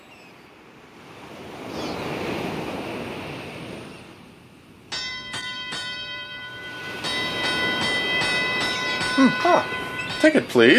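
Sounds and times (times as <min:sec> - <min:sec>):
waves lapping at the harbor of Jaffa: 0:00.0 - 0:10.7
louder sustained ringing tone: 0:04.9 - 0:10.7
sharp metallic bell-like clangs: 0:04.9 - 0:10.7
speech: 0:09.2 - 0:10.7.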